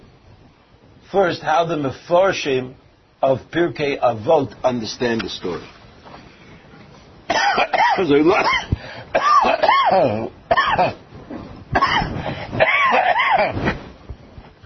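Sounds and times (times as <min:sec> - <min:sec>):
speech: 0:01.1 - 0:05.8, 0:08.0 - 0:08.6, 0:09.2 - 0:11.0, 0:11.7 - 0:13.8
person coughing: 0:07.3 - 0:11.0, 0:11.7 - 0:13.6.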